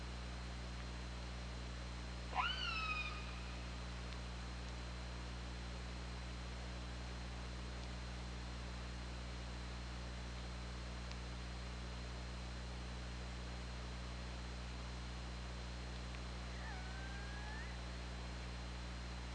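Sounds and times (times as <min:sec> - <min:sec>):
faint high whine: 0:00.0 - 0:19.3
steady low hum: 0:00.0 - 0:19.3
orca call: 0:02.4 - 0:03.4, 0:16.5 - 0:17.8.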